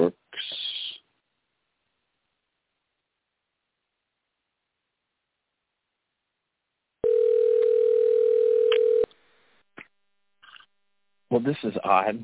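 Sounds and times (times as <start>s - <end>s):
telephone dial tone: 7.0s - 9.1s
speech: 11.4s - 12.2s.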